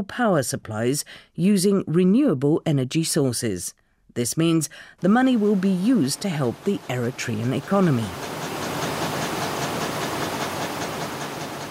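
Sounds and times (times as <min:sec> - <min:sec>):
speech: 0:00.0 - 0:08.4
cotton spinning machines winding thread onto bobbins: 0:06.2 - 0:11.7
fast regular ticking of cotton spinning machines: 0:06.5 - 0:11.7.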